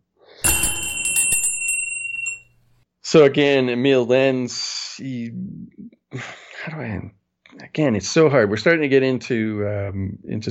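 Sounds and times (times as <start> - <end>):
bell ringing: 0.4 - 2.7
speech: 3.1 - 10.4.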